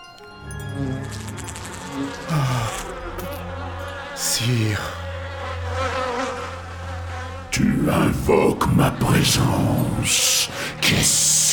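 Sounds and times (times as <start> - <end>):
swarm of many flies buzzing: 0.4 - 7.5
speech: 4.4 - 5.0, 7.9 - 11.5.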